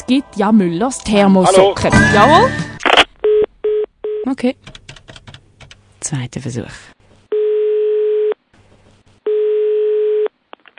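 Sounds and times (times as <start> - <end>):
speech: 0.1 - 2.7, 4.2 - 4.8, 6.1 - 6.9
telephone dial tone after a call was hung up: 7.3 - 8.4, 9.3 - 10.3.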